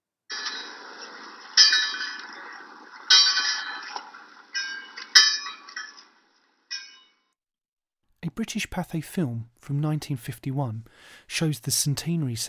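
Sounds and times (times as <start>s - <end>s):
lighthouse fog bell clanging: 1.6s - 6.1s
speech: 8.4s - 12.4s.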